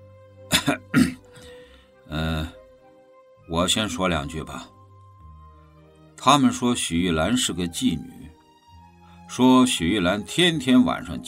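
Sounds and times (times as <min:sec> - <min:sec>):
voiced throat clearing: 0:00.5 - 0:01.4
person coughing: 0:00.5 - 0:01.5
speech: 0:00.7 - 0:01.2, 0:03.6 - 0:04.8, 0:06.2 - 0:08.2, 0:09.3 - 0:11.2.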